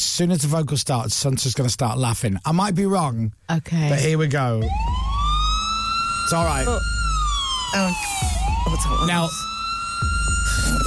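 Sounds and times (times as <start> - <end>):
speech: 0.2 - 5.0, 6.3 - 7.0, 7.7 - 10.1
looped wailing siren: 4.6 - 10.8.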